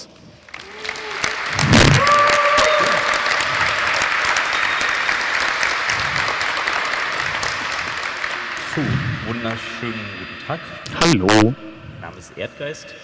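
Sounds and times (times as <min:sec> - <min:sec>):
audience applause welcoming two speakers at a talk: 0:00.4 - 0:10.3
brief tonal whistle or feedback line: 0:08.8 - 0:13.0
speech: 0:08.8 - 0:13.0.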